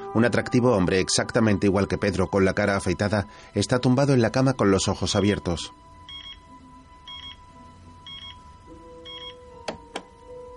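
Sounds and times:
speech: 0:00.1 - 0:05.9
digital alarm clock beeping: 0:06.0 - 0:09.5.

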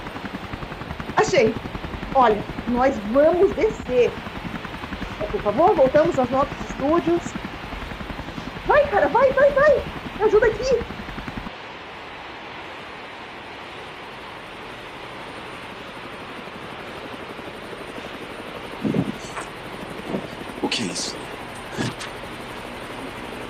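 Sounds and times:
helicopter droning overhead: 0:00.0 - 0:12.0, 0:12.6 - 0:23.4
speech: 0:01.1 - 0:04.3, 0:05.3 - 0:07.5, 0:08.7 - 0:10.9.

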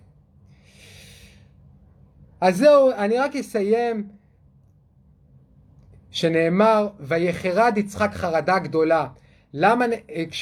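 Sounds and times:
low steady hum: 0:00.0 - 0:10.4
deep breath in and out: 0:00.5 - 0:01.7
speech: 0:02.4 - 0:04.2, 0:06.2 - 0:10.4.

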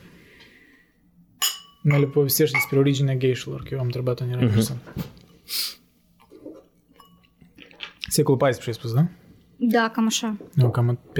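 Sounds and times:
glasses clinking in a toast: 0:01.4 - 0:03.0, 0:06.9 - 0:07.6
speech: 0:01.8 - 0:05.6, 0:08.2 - 0:11.1.

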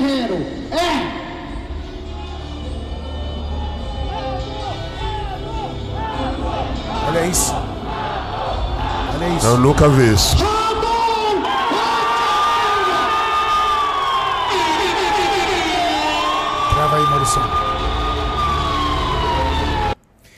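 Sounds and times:
speech: 0:00.3 - 0:01.0, 0:07.3 - 0:07.6, 0:09.4 - 0:10.5, 0:17.3 - 0:17.6
packed audience screaming and cheering at a bodybuilding contest: 0:01.9 - 0:20.0.

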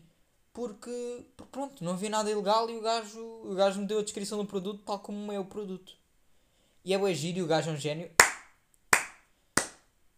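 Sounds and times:
speech: 0:00.6 - 0:06.0, 0:06.8 - 0:08.2
sharp hand claps from a single person: 0:08.2 - 0:09.9.

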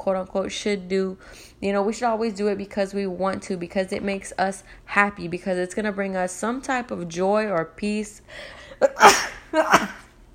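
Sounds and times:
speech: 0:00.0 - 0:10.0
sneezes: 0:08.8 - 0:10.1.

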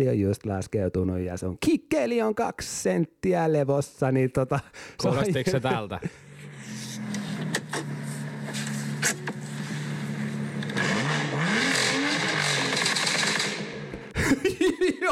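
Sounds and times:
speech: 0:00.0 - 0:07.1, 0:14.3 - 0:15.0
laughter: 0:05.0 - 0:06.2, 0:14.1 - 0:15.0
car engine idling and revving: 0:06.2 - 0:14.1.

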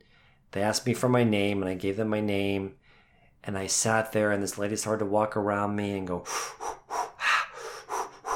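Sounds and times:
speech: 0:00.5 - 0:02.8, 0:03.4 - 0:06.8
voice imitating a woman's heavy breathing: 0:06.2 - 0:08.3.

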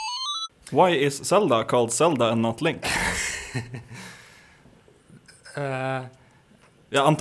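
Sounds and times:
loud electronic doorbell chime: 0:00.1 - 0:00.5
speech: 0:00.8 - 0:04.0, 0:05.6 - 0:06.2, 0:06.9 - 0:07.1
laughter: 0:02.8 - 0:04.1.

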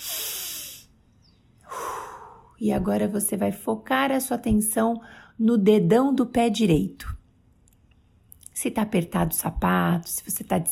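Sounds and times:
airy deep breath with hissing inhale and breathy exhale: 0:00.0 - 0:01.0, 0:01.6 - 0:02.6
speech: 0:02.6 - 0:07.2, 0:08.6 - 0:10.6.

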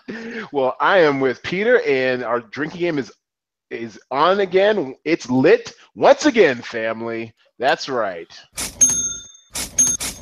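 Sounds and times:
speech: 0:00.1 - 0:08.8
cash register bell ding: 0:08.6 - 0:10.2.

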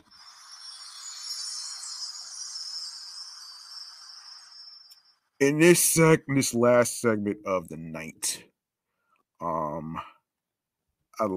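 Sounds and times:
bright shimmering wash of chimes: 0:00.0 - 0:06.6
speech: 0:05.4 - 0:08.5, 0:09.4 - 0:10.1, 0:11.2 - 0:11.3.

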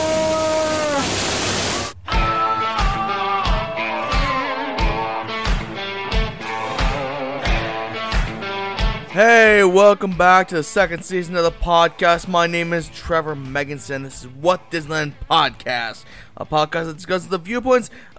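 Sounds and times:
waterfall rushing water: 0:00.0 - 0:02.0
upbeat rhythmic music with regular beats: 0:02.1 - 0:17.9
speech: 0:09.2 - 0:18.1.

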